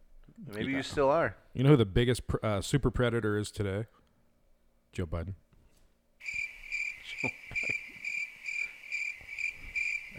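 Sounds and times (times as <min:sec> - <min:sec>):
speech: 0:00.4 - 0:04.0, 0:04.9 - 0:05.4
crickets chirping: 0:06.2 - 0:10.1.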